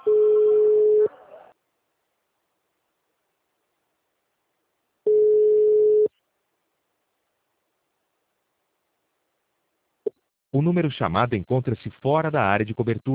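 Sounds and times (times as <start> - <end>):
ringback tone of an outgoing telephone call placed over VoIP: 0.0 - 1.1, 5.1 - 6.1
speech: 10.6 - 13.1.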